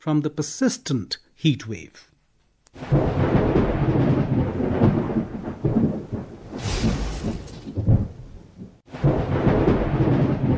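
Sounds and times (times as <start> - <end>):
speech: 0.0 - 2.1, 2.8 - 3.2
deep rolling thunder rumbling: 2.8 - 10.5
heavy rain pouring: 2.8 - 10.5
hiss-heavy wind gust: 2.8 - 10.5.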